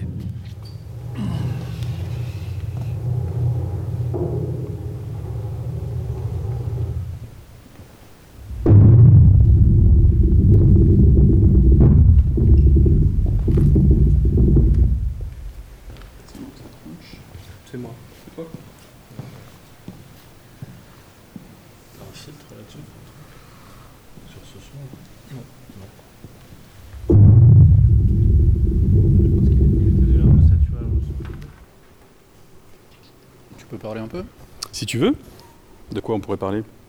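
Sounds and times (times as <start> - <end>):
deep glacier rumble picked up by hydrophones and seismic sensors in crevasses: 0.9 - 7.3, 8.4 - 16.3, 26.9 - 31.6
speech: 34.9 - 35.3, 36.0 - 36.8.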